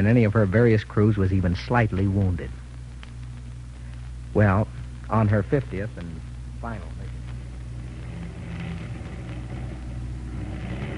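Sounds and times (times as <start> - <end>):
speech: 0.0 - 2.6, 4.4 - 7.0
aircraft engine droning with one motor out on crash landing: 4.6 - 10.9.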